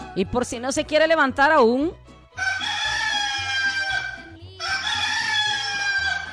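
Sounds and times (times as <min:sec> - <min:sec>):
speech: 0:00.2 - 0:02.5
rooster crowing: 0:02.4 - 0:06.3.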